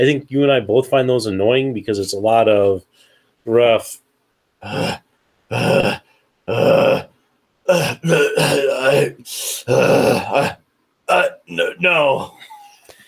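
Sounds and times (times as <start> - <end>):
speech: 0.0 - 4.0, 4.6 - 7.1, 7.7 - 12.5
person imitating grunting and panting: 4.6 - 7.1, 7.7 - 10.6.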